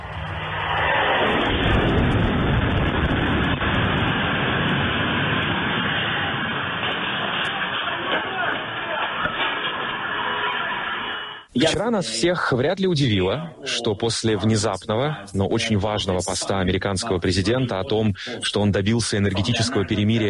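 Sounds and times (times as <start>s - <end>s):
Russian jet-powered Shahed drones roaring overhead: 0.0s - 11.5s
speech: 11.6s - 20.2s.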